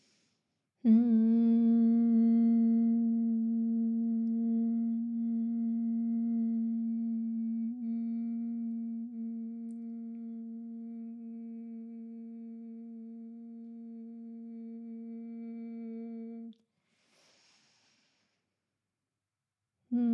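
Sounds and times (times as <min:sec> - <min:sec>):
speech: 0:00.8 - 0:01.2
single voice humming at an unchanging pitch: 0:00.8 - 0:16.6, 0:19.9 - 0:20.1.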